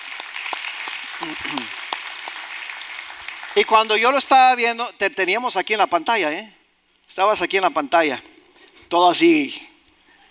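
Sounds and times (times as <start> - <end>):
crowd applauding for newly baptized people: 0.0 - 4.8
speech: 1.2 - 1.8, 3.6 - 8.3, 8.9 - 9.7.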